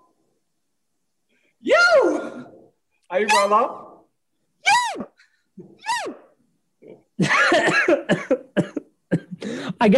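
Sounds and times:
speech: 3.1s - 3.8s, 7.2s - 8.8s, 9.8s - 9.9s
high wavering vocal yelps: 3.1s - 4.0s, 4.6s - 6.4s
person coughing: 7.2s - 9.6s.

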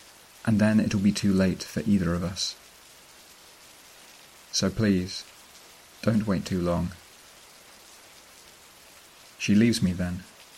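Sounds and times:
gentle rain falling on grass: 0.0s - 10.5s
speech: 0.4s - 2.6s, 4.6s - 5.3s, 6.0s - 7.0s, 9.4s - 10.3s.

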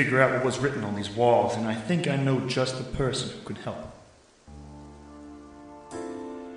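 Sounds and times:
speech: 0.0s - 4.0s
rain falling outside a cave: 0.0s - 6.5s
soft sustained tonal hum: 4.4s - 6.5s.

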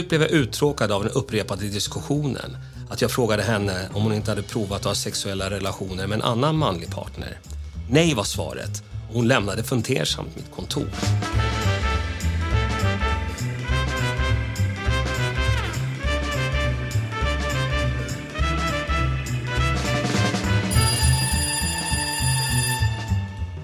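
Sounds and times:
speech: 0.0s - 11.6s
steady low pulsing backdrop: 11.1s - 23.6s
telephone ringing with electronic trills: 20.7s - 23.4s.

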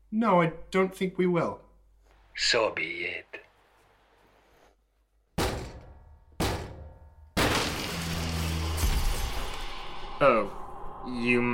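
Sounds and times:
speech: 0.1s - 1.6s, 2.4s - 3.4s, 10.2s - 11.5s
heavy thuds of a door being battered: 5.4s - 7.0s
long loud splintering crash of a door being battered down: 5.4s - 9.7s.

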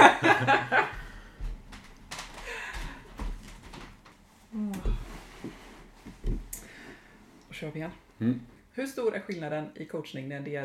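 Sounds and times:
laughter: 0.0s - 1.0s
door rattling: 1.6s - 4.2s
speech: 7.6s - 10.6s.

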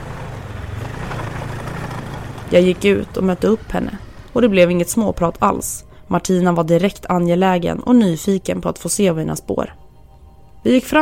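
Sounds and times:
snowmobile engine droning: 0.0s - 5.6s
speech: 2.5s - 9.8s, 10.6s - 10.9s.

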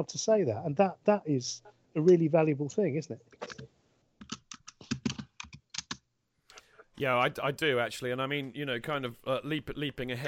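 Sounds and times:
speech: 0.0s - 3.7s, 7.0s - 10.2s
typing on a computer keyboard: 4.2s - 6.0s.

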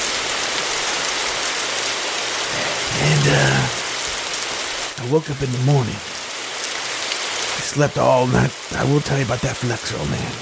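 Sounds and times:
rain sound effect of heavy rainfall from a sound effects board: 0.0s - 10.4s
speech: 3.3s - 3.8s, 5.0s - 6.2s, 7.7s - 10.4s.

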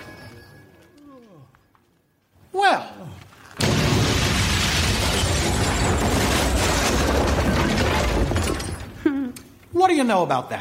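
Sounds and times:
house collapsing with a boom: 3.6s - 9.0s
speech: 9.8s - 10.6s.

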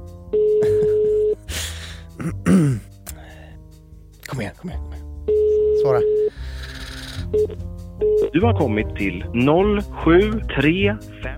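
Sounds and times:
phone ringback tone in an earpiece during an outgoing call: 0.3s - 1.4s, 5.3s - 6.4s, 7.2s - 8.4s
person sighing: 1.5s - 3.5s
speech: 4.6s - 5.1s, 5.8s - 6.1s, 8.4s - 11.3s.

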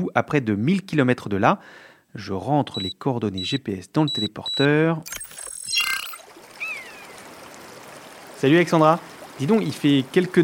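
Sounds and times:
speech: 0.0s - 5.9s, 8.4s - 10.4s
short bird chirp: 5.8s - 7.2s
river water flowing and splashing: 6.2s - 10.4s.

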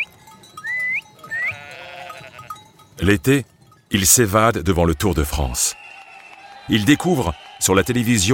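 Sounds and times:
goats bleating as they are brought in for the evening: 1.2s - 2.6s
speech: 3.0s - 5.8s, 6.7s - 8.3s.

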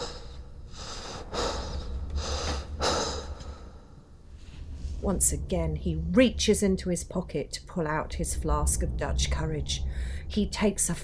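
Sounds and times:
heavy ragged gasping breaths: 0.0s - 3.9s
speech: 5.0s - 11.0s.

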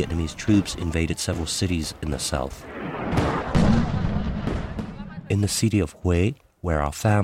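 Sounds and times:
speech: 0.0s - 3.5s, 5.3s - 7.2s
explosions: 2.1s - 5.6s
gunfire: 2.7s - 5.4s.

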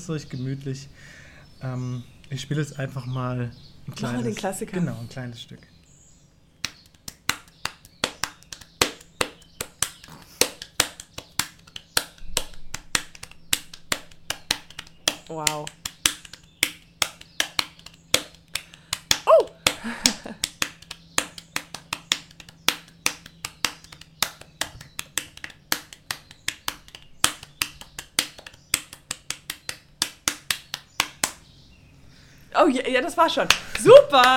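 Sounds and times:
speech: 0.0s - 5.7s, 15.3s - 15.8s, 32.6s - 34.3s
hands slapping a belly in rhythmic drumming: 6.6s - 31.4s.

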